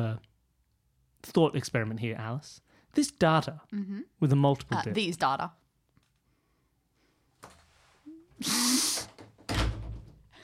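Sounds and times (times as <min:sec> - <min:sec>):
speech: 0:01.2 - 0:05.6, 0:08.4 - 0:08.8
door slammed shut: 0:09.4 - 0:10.2.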